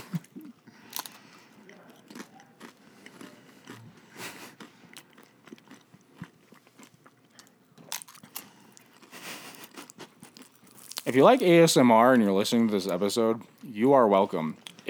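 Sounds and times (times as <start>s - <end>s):
chewing and biting through a chewy taco shell: 0.0s - 11.6s
speech: 11.1s - 14.8s.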